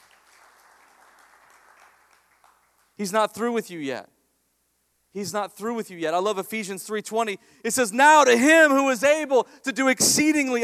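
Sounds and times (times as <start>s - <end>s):
crowd applauding steadily: 0.0s - 3.0s
speech: 3.0s - 4.1s, 5.2s - 10.6s.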